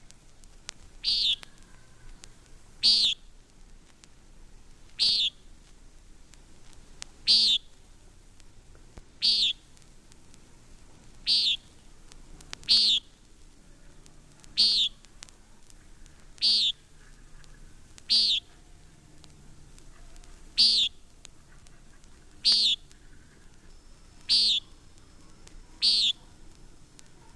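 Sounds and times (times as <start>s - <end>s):
faint hiss: 0.0s - 27.3s
common nighthawk giving nasal buzzy calls: 1.0s - 2.2s, 2.8s - 3.3s, 5.0s - 5.5s, 7.2s - 7.8s, 9.2s - 9.8s, 11.2s - 11.9s, 12.6s - 13.2s, 14.4s - 19.2s, 19.8s - 26.5s.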